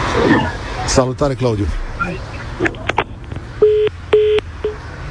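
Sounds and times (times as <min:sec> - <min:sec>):
speech: 0:00.1 - 0:02.9
phone line beeps after a dropped call: 0:03.6 - 0:04.8.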